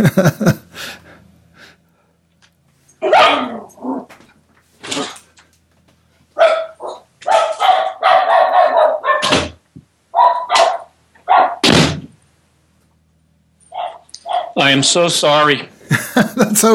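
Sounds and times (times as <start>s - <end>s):
speech: 0.0s - 0.6s, 14.7s - 16.7s
laughter: 0.0s - 1.2s, 15.8s - 16.7s
female dog barking at people working on the house: 3.0s - 4.1s, 6.4s - 11.6s, 13.7s - 14.6s.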